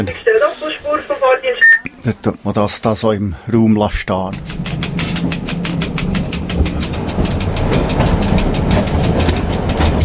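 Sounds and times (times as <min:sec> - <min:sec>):
speech: 0:00.0 - 0:05.4
old railway motor car running uphill at 18 km/h: 0:04.1 - 0:10.0.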